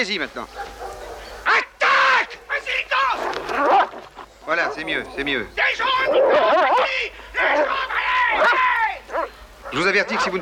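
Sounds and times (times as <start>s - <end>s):
speech: 0.0s - 0.8s, 4.5s - 8.7s, 9.7s - 10.4s
dog barking: 0.5s - 2.6s, 3.2s - 4.9s, 6.1s - 10.4s.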